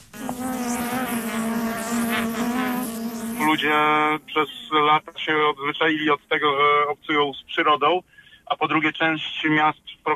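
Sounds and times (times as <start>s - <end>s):
honeybees buzzing at an urban apiary: 0.0s - 5.5s
speech: 3.5s - 10.1s.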